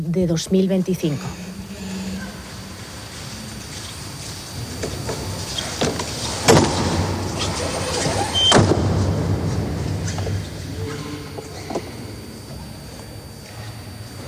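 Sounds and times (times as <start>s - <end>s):
speech: 0.0s - 1.5s
heavy chapel door creaking and thudding shut in a large hall: 3.8s - 11.9s.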